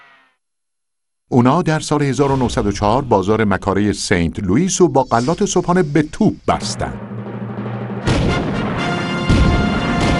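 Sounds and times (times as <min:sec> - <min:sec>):
speech: 0:01.3 - 0:07.1
heavy cannon booms: 0:07.0 - 0:10.1.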